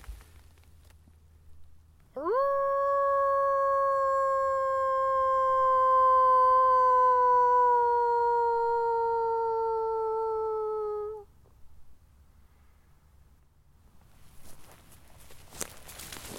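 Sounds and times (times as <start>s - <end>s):
faint footsteps in a forest: 0.0s - 1.2s, 14.0s - 16.3s
quiet forest outdoor ambience: 0.0s - 16.3s
person in a forest imitating a wolf howl: 2.2s - 11.3s.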